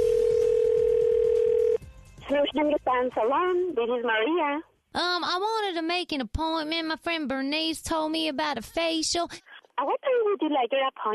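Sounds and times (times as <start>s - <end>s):
steady electronic ringback tone on an outgoing phone call: 0.0s - 1.8s
speech: 2.5s - 11.1s.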